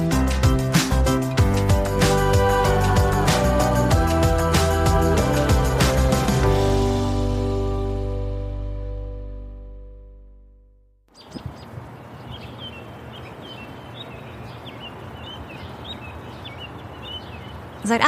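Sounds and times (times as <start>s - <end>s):
sustained musical chord: 0.2s - 10.8s
small birds chirping and tweeting in New York morning: 11.1s - 18.0s.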